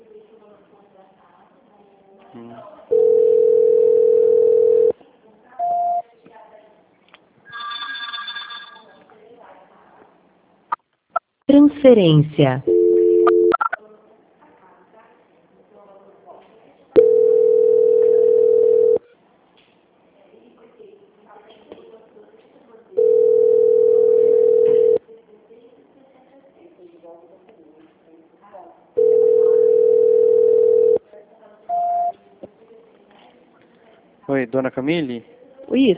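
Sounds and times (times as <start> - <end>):
telephone ringing tone on an unanswered call: 2.9 - 5.0, 7.5 - 9.0, 12.6 - 13.7, 17.0 - 19.0, 23.0 - 25.0, 29.0 - 31.0, 31.7 - 32.1
speech: 11.6 - 12.7, 34.5 - 35.9.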